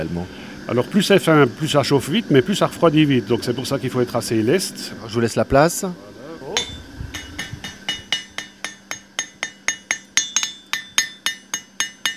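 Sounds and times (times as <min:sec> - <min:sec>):
speech: 0:00.0 - 0:06.1
hammer tapping lightly on thin sheet metal: 0:06.6 - 0:12.1.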